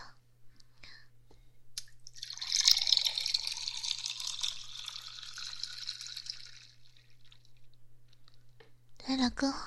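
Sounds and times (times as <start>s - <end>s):
hot water pouring into a cup: 2.1s - 7.7s.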